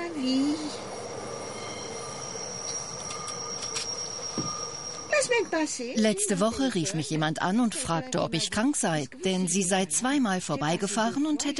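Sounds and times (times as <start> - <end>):
passing train rumbling: 0.0 - 7.1
low whistle-like tone: 0.6 - 5.9
high-pitched train wheel squeal: 0.6 - 6.0
speech: 5.3 - 11.5.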